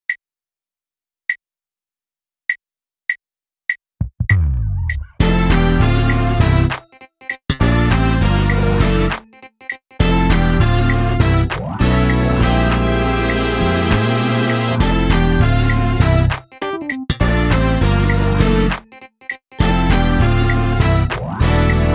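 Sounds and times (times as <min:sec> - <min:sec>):
drumless groove: 0:04.0 - 0:09.3, 0:10.0 - 0:21.9.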